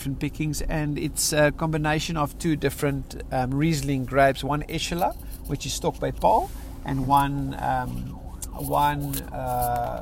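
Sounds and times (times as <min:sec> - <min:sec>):
road and engine noise of a moving car: 0:00.0 - 0:10.0
speech: 0:00.0 - 0:10.0
ambulance siren wailing past a moving car: 0:07.0 - 0:10.0.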